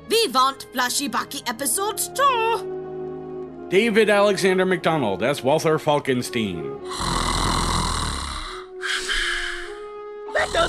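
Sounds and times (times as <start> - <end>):
speech: 0.3 - 2.8, 3.7 - 7.3, 10.5 - 10.6
loud raspy snoring with whistling inhale: 6.8 - 10.6.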